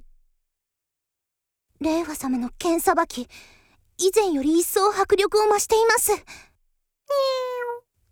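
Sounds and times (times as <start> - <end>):
speech: 1.9 - 6.5, 7.1 - 7.6
cat meowing: 7.1 - 7.8.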